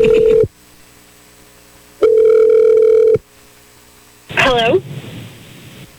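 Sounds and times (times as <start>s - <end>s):
ringback tone of an outgoing phone call: 0.0s - 0.5s, 2.0s - 3.2s
faint hum: 0.0s - 5.9s.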